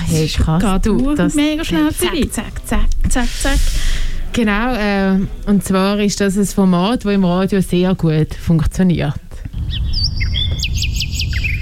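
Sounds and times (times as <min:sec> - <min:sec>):
low rumble: 0:00.0 - 0:11.6
speech: 0:00.1 - 0:09.8
nightingale singing: 0:09.6 - 0:11.6.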